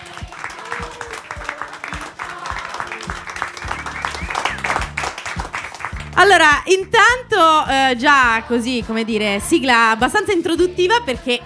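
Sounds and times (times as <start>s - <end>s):
audience cheering voices: 0.0s - 6.2s
live evening audience applauding to welcome guests: 0.0s - 6.2s
speech: 6.2s - 11.4s.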